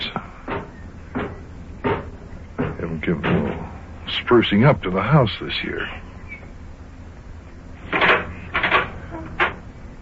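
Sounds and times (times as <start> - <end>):
kitchen door of a house opened with wooden rattles and knocks: 0.5 - 3.7, 7.8 - 9.7
speech: 3.1 - 6.1.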